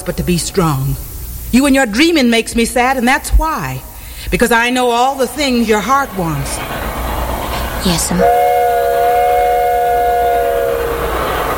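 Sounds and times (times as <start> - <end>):
speech: 0.0 - 6.9, 7.8 - 8.5
low rumbling background: 5.1 - 11.5
steam train whistle blowing a long chord-like blast: 7.9 - 11.5.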